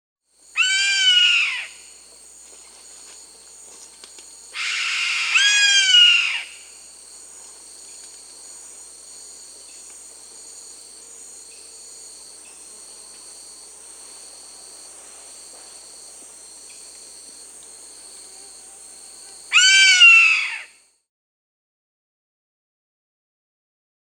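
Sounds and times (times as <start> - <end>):
Black Caracara Daptrius ater calling in Peru: 0.5 - 1.9, 4.5 - 6.7, 19.5 - 20.8.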